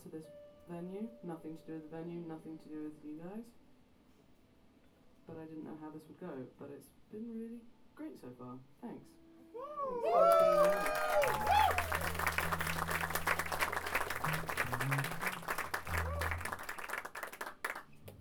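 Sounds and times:
speech: 0:00.1 - 0:03.6, 0:05.3 - 0:11.5
tonal cries: 0:09.6 - 0:16.8
audience clapping at a live concert in a club venue: 0:10.2 - 0:18.2
low sustained tone: 0:11.2 - 0:16.5.

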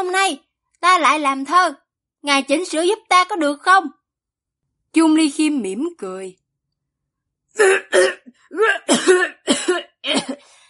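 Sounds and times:
speech: 0:00.0 - 0:04.0, 0:04.9 - 0:06.4, 0:07.6 - 0:10.6
harsh dry coughing: 0:07.6 - 0:10.6.

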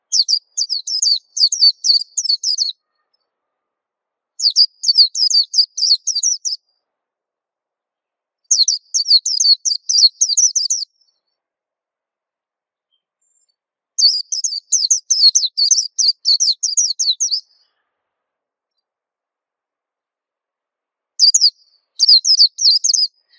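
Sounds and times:
White-eye singing rapid high-pitched twittering song: 0:00.1 - 0:03.2, 0:04.4 - 0:06.6, 0:08.5 - 0:11.2, 0:12.9 - 0:17.7, 0:21.2 - 0:23.3.

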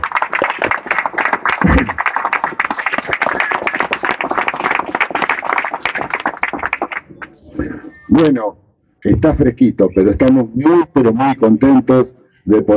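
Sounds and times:
audience applause at a political speech: 0:00.0 - 0:07.1
speech: 0:08.2 - 0:12.7.

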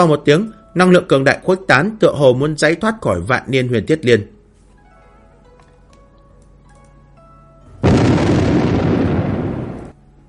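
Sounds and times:
speech: 0:00.0 - 0:04.4
explosion as the ground bursts with bursts of fire: 0:07.8 - 0:10.0.

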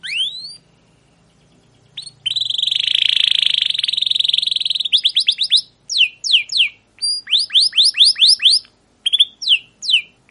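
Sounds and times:
captive canary singing a long continuous tutor song: 0:00.0 - 0:10.3.

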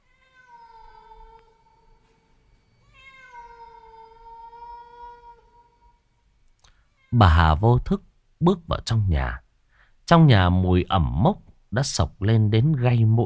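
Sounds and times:
cat on a porch meowing: 0:00.0 - 0:06.0, 0:06.9 - 0:07.4
speech: 0:07.1 - 0:09.4, 0:10.1 - 0:13.2.

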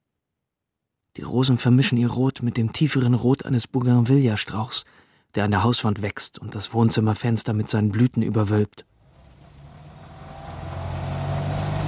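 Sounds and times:
speech: 0:01.2 - 0:08.9
German-made Adler car driving along a coastal road: 0:08.9 - 0:11.8
road noise: 0:08.9 - 0:11.8.

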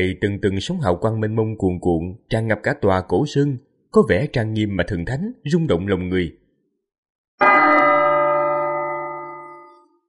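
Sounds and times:
speech: 0:00.0 - 0:06.4
golden temple bell ringing from a mountain temple: 0:07.4 - 0:10.0.

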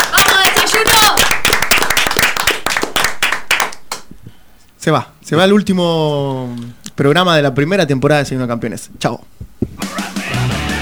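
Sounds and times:
hand clapping from a small group of hosts: 0:00.0 - 0:04.1
speech: 0:04.8 - 0:09.6.

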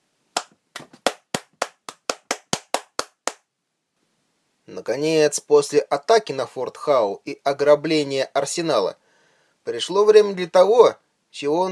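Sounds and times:
group of people applauding: 0:00.8 - 0:03.4
speech: 0:04.7 - 0:09.0, 0:09.6 - 0:11.7.

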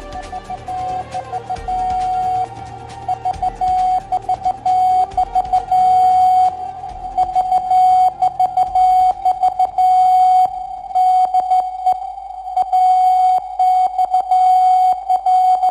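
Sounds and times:
Morse code radio call sign from the radiotelegraph station at Babice near Warsaw: 0:00.0 - 0:15.6.

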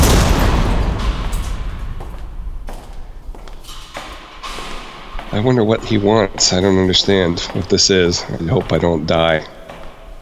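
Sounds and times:
huge cage door slamming shut: 0:00.0 - 0:02.6, 0:03.6 - 0:05.4
metal clanks and rattles of cage door settling: 0:00.0 - 0:07.6
speech: 0:05.4 - 0:09.6.

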